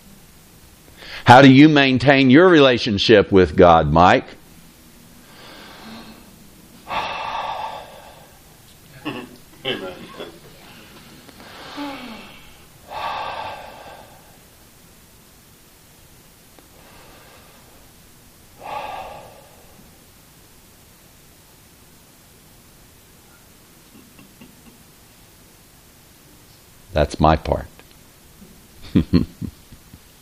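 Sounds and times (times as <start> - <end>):
speech: 1.3 - 4.4, 27.2 - 27.7, 29.0 - 29.6
slow deep breathing: 5.2 - 8.6, 10.9 - 14.6, 16.7 - 17.9, 18.6 - 20.1.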